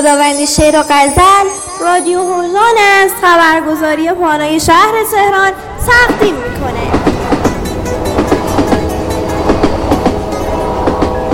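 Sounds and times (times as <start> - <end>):
speech: 0.0 - 7.0
train rolling along the tracks with a continuous rumble: 3.3 - 11.3
train wheels clickety-clack over the tracks: 5.8 - 11.3
train whistle: 6.5 - 11.3.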